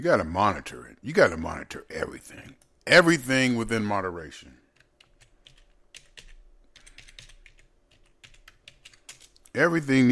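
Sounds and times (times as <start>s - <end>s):
speech: 0.0s - 4.6s, 9.6s - 10.1s
typing on a computer keyboard: 4.7s - 9.5s.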